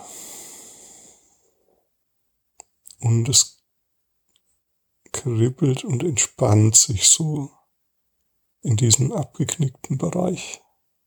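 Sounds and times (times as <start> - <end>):
deep breath exhaled: 0.0 - 1.4
speech: 3.0 - 3.6, 5.2 - 7.6, 8.6 - 10.6.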